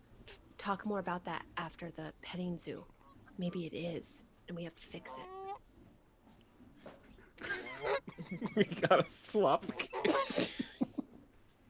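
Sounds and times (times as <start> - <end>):
speech: 0.6 - 5.3, 8.3 - 10.5
geese honking with harsh nasal calls: 4.9 - 5.6, 7.4 - 8.3, 9.5 - 10.5
laughter: 7.4 - 11.0.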